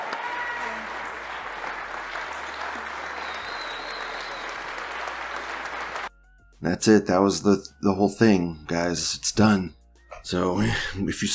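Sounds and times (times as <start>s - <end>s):
audience applause: 0.0s - 6.1s
speech: 6.6s - 11.3s.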